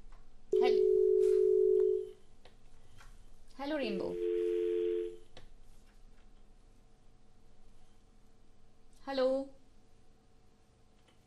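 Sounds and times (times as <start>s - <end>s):
telephone line tone while connecting a caller: 0.6s - 2.2s, 4.0s - 5.2s
speech: 3.7s - 4.3s, 9.1s - 9.5s.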